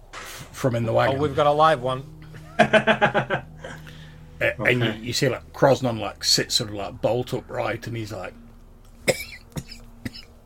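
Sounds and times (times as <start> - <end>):
speech: 0.6 - 3.4, 4.4 - 8.4
laughter: 2.3 - 5.1
voice imitating a man's spluttering cough: 9.1 - 10.3.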